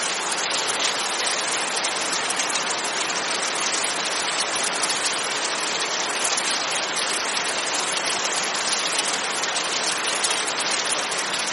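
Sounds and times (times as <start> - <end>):
torrential downpour: 0.0 - 11.5.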